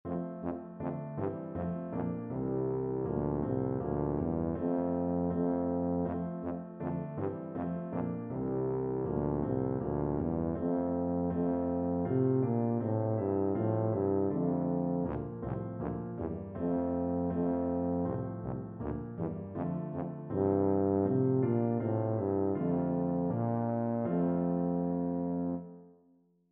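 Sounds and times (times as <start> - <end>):
tuba playing a carol: 0.1 - 26.0.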